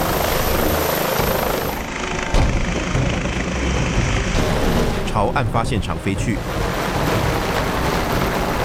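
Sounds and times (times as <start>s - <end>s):
police helicopter rotor and engine roaring as it lifts off: 0.0s - 8.6s
speech: 5.3s - 6.8s.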